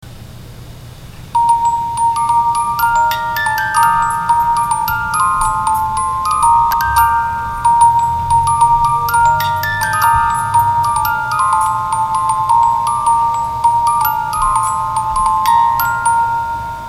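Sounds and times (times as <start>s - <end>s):
18-note music box melody: 1.4s - 16.8s.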